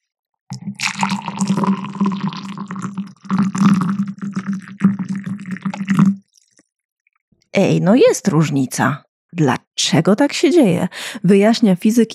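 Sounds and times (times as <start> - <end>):
hot water pouring into a glass: 0.6 - 6.6
speech: 7.6 - 12.1.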